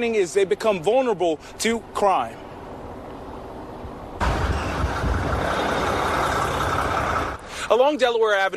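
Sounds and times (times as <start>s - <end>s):
speech: 0.0s - 2.5s, 7.7s - 8.5s
broad roar of traffic noise: 0.0s - 8.5s
trucks idling by a roadside: 2.3s - 7.8s.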